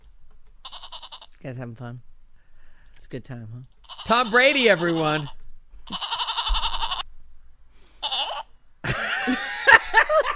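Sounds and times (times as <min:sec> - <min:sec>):
goat bleating: 0:00.6 - 0:01.3, 0:03.8 - 0:07.1, 0:08.0 - 0:08.5
speech: 0:01.4 - 0:02.1, 0:03.1 - 0:06.0
laughter: 0:08.8 - 0:10.3.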